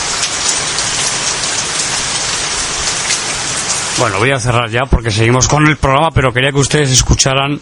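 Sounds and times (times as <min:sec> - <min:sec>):
very heavy rain falling: 0:00.0 - 0:07.6
speech: 0:04.0 - 0:07.6.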